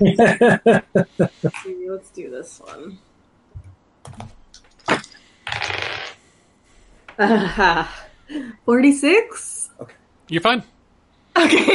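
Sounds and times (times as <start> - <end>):
laughter: 0.0 - 1.6
speech: 0.0 - 3.2, 4.0 - 6.1, 7.2 - 10.7, 11.4 - 11.7
plastic percentile dice rolling across a hard surface: 4.9 - 6.2.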